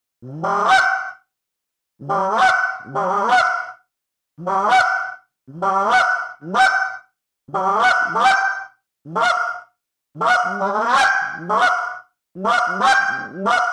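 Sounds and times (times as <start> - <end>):
speech: 0.2 - 1.0, 2.0 - 3.6, 4.4 - 6.8, 7.5 - 9.5, 10.1 - 11.8, 12.4 - 13.7
goose call making goose honks and clucks: 0.2 - 1.2, 2.0 - 3.8, 4.4 - 13.7.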